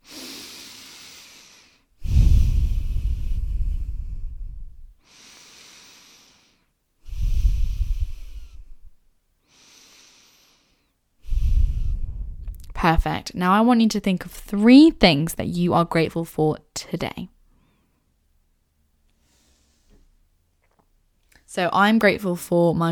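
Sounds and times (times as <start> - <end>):
deep breaths taken slowly for a meditation: 0.0 - 13.0, 17.5 - 18.2, 19.2 - 20.1
speech: 12.8 - 17.4, 21.5 - 22.8.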